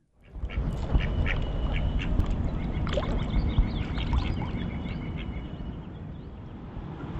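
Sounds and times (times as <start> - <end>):
mallard ducks quacking at a Virginia pond: 0.2 - 2.1
steady low rumbling noise: 0.2 - 7.1.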